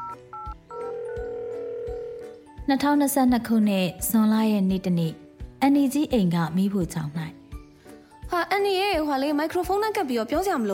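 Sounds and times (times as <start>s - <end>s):
telephone keypad beeps: 0.0s - 1.2s
long steady telephone tone: 0.0s - 2.4s
speech: 2.7s - 7.3s, 8.4s - 10.7s.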